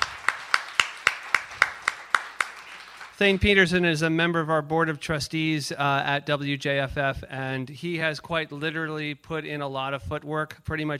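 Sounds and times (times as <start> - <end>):
crowd clapping rhythmically at a live jazz event: 0.0 - 3.6
speech: 3.2 - 10.9.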